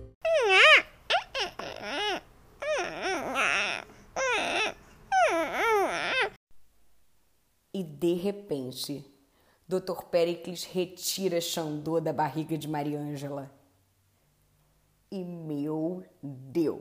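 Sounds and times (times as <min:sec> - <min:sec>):
newborn baby crying in short wavering wails: 0:00.3 - 0:06.4
speech: 0:08.1 - 0:09.1, 0:09.7 - 0:13.6, 0:15.1 - 0:16.8.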